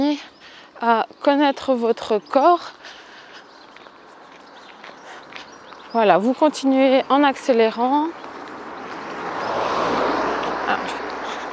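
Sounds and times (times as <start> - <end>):
speech: 0.2 - 3.0, 5.9 - 8.3
car passing by: 8.1 - 11.5.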